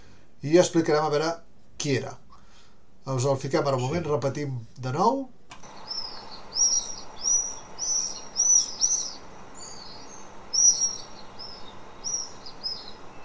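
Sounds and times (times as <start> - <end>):
faint hum: 0.0 - 13.2
speech: 0.4 - 2.2, 3.1 - 5.6
common swifts giving shrill high screaming calls: 5.6 - 13.2.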